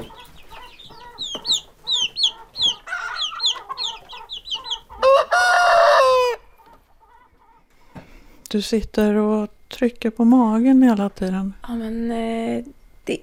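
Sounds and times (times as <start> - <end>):
chickens clucking: 0.0 - 8.4
rooster crowing: 2.0 - 7.6
speech: 8.5 - 13.2.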